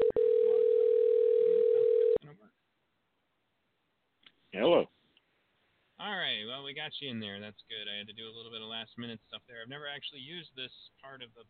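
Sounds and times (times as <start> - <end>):
telephone dial tone while placing a call: 0.0 - 2.2
speech: 6.7 - 11.4.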